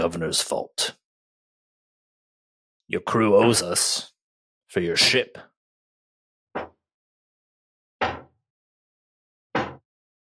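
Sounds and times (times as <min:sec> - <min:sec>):
speech: 0:00.0 - 0:01.0, 0:02.9 - 0:04.1, 0:04.7 - 0:05.5
heavy banging on a door: 0:08.0 - 0:08.3, 0:09.6 - 0:09.8.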